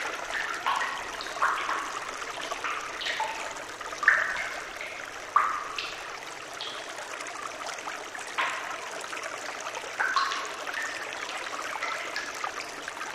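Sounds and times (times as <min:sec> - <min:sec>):
stream flowing: 0:00.0 - 0:13.1
water dripping: 0:00.0 - 0:13.1.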